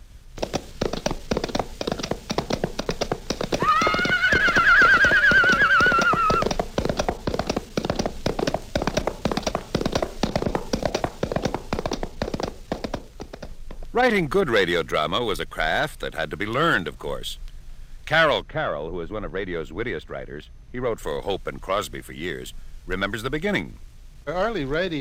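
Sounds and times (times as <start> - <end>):
horse hoofbeats made with coconut shells for radio drama: 0.4 - 14.5
horse whinny: 3.6 - 6.6
speech: 14.0 - 17.4, 18.1 - 24.9.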